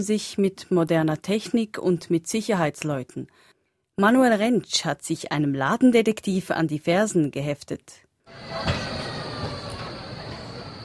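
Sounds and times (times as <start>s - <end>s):
speech: 0.0s - 9.6s
thin high whine: 8.3s - 10.8s
traffic noise on a busy shopping street: 8.3s - 10.8s
tram or rail vehicle rumbling past: 8.3s - 10.8s.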